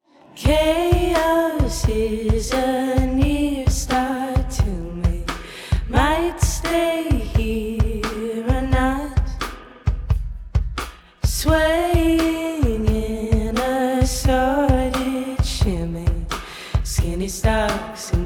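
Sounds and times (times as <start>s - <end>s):
vocal drums: 0.2s - 18.2s.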